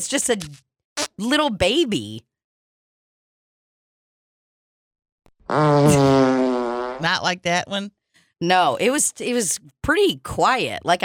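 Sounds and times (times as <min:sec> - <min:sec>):
speech: 0:00.0 - 0:02.3, 0:05.5 - 0:06.2, 0:07.0 - 0:11.0
loud fart: 0:05.4 - 0:07.1.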